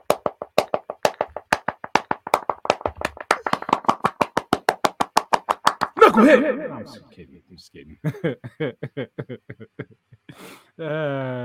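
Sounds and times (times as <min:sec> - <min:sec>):
sharp hand claps: 0:00.0 - 0:06.0
speech: 0:06.2 - 0:11.4
laughter: 0:08.0 - 0:10.2.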